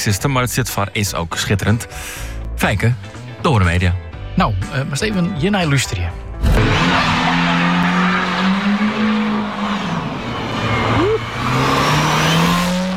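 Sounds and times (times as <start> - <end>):
speech: 0.0 - 7.2
car engine roaring while accelerating hard: 6.4 - 12.9
tires squealing and screeching: 6.4 - 12.9.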